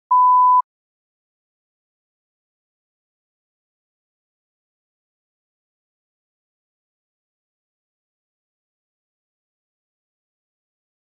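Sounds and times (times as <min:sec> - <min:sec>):
electronic beep: 0:00.1 - 0:00.6.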